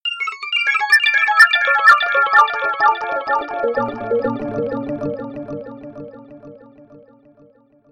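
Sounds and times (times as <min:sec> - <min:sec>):
soft arpeggio: 0:01.5 - 0:07.0.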